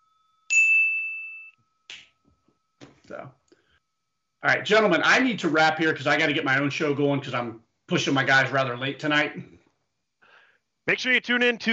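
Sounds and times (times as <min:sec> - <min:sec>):
bright bell ding with long ringing decay: 0:00.0 - 0:01.6
speech: 0:03.1 - 0:03.4, 0:04.4 - 0:09.6, 0:10.9 - 0:11.7
burst of voices: 0:10.9 - 0:11.7.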